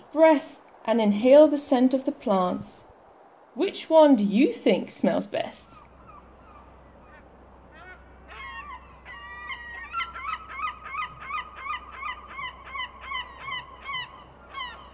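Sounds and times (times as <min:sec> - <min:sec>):
low rumble of wind or surf on a beach: 0:00.0 - 0:14.9
speech: 0:00.1 - 0:02.9, 0:03.6 - 0:05.8
European herring gull giving harsh yelping calls on a beach: 0:05.7 - 0:14.9.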